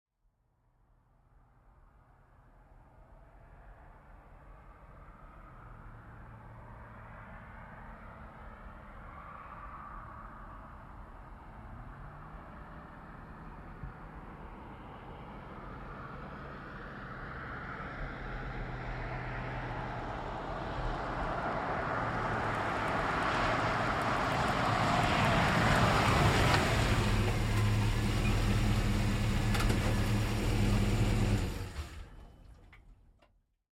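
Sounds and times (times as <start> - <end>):
GMC Savana truck pulling up and stopping: 17.8 - 33.3.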